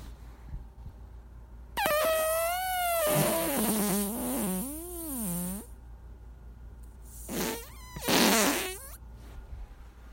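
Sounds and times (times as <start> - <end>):
long warbling fart: 1.8 - 5.7, 7.2 - 9.0.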